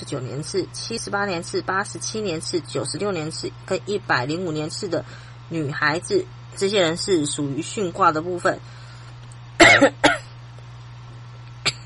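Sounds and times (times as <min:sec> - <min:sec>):
low steady hum: 0:00.0 - 0:11.8
speech: 0:00.1 - 0:08.8, 0:09.7 - 0:10.1
woman coughing: 0:09.6 - 0:10.3, 0:11.6 - 0:11.8.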